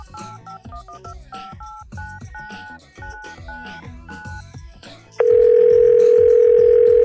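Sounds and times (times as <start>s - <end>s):
touch-tone beeps of a long phone number being dialed: 0.0s - 4.4s, 5.2s - 7.0s
loud steady telephone tone: 5.2s - 7.0s.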